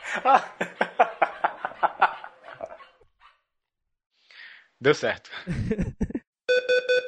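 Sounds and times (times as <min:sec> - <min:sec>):
laughter: 0:00.0 - 0:03.0, 0:05.3 - 0:06.2
speech: 0:00.2 - 0:01.3, 0:04.8 - 0:06.1
dogs barking: 0:00.3 - 0:03.4.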